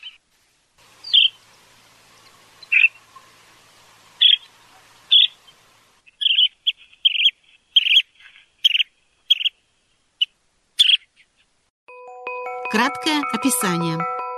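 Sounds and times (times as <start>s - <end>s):
Curlew Sandpiper calls: 1.0s - 1.4s, 2.2s - 3.4s, 4.2s - 9.6s
speech: 12.8s - 14.2s.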